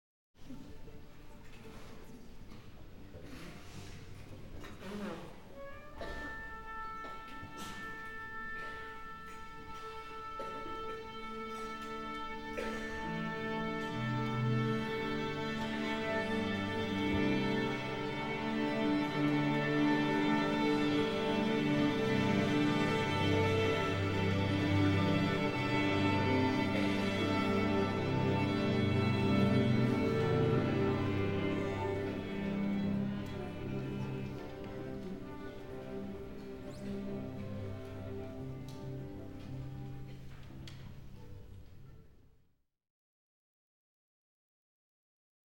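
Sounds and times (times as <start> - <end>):
orchestra tuning up: 5.4 - 41.7.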